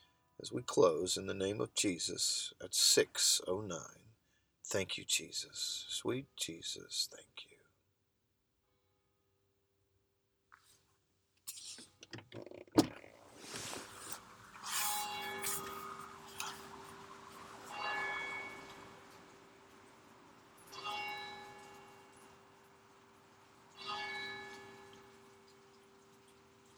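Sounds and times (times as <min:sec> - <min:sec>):
speech: 0:00.4 - 0:04.0, 0:04.7 - 0:07.5, 0:12.1 - 0:12.8
bells of a Catholic church in Florida tolling: 0:15.2 - 0:22.4, 0:23.8 - 0:25.4.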